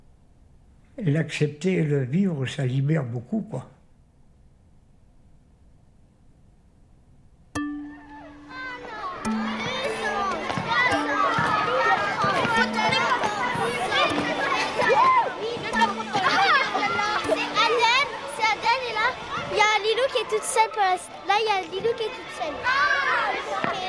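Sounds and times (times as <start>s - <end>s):
speech: 1.0s - 3.8s, 20.3s - 23.8s
children shouting and calling while playing chasing games in a playground: 7.8s - 23.8s
children excited cries: 8.1s - 21.0s.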